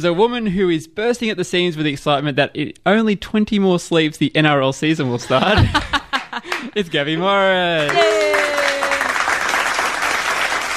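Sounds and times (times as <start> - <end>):
speech: 0.0 - 6.0, 6.7 - 8.2
laughter: 5.1 - 6.8
loud dense clapping of many hands: 6.2 - 6.7, 7.8 - 10.7.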